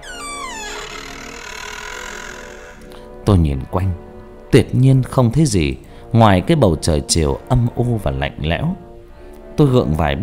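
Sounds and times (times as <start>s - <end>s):
old door creaking open: 0.0s - 3.0s
speech: 3.3s - 8.8s, 9.6s - 10.2s.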